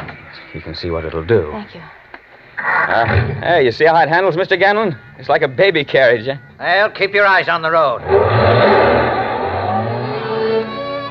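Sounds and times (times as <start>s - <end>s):
speech: 0.5s - 2.0s, 2.6s - 8.8s
car engine revving hard taking a corner on two wheels: 8.0s - 11.0s.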